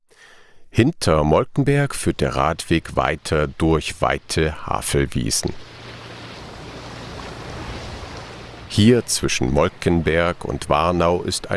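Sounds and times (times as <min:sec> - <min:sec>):
speech: 0:00.8 - 0:05.7, 0:08.7 - 0:11.5
boat passing on a river between meadows: 0:03.1 - 0:11.5.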